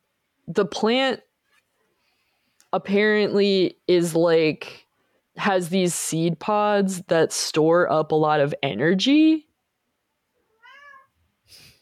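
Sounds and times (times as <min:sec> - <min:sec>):
speech: 0:00.5 - 0:01.3, 0:02.7 - 0:04.8, 0:05.4 - 0:09.5
cat meowing: 0:10.4 - 0:11.2
cat's short breathy burst: 0:11.4 - 0:11.7.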